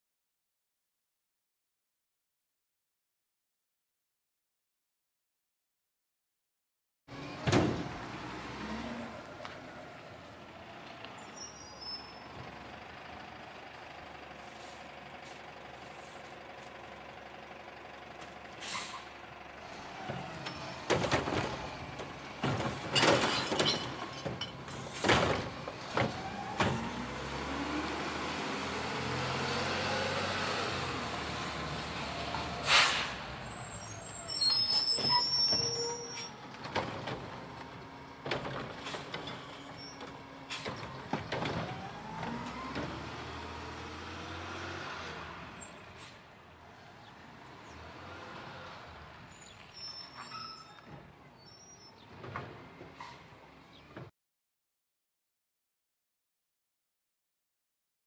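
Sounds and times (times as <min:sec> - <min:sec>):
garbage truck: 0:07.1 - 0:54.1.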